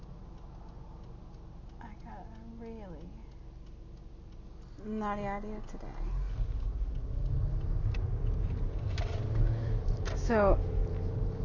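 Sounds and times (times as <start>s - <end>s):
road noise on a highway: 0.0s - 11.4s
speech: 4.8s - 6.4s, 10.3s - 10.7s
car engine revving while accelerating on a highway, heard from inside the cabin: 5.0s - 11.4s.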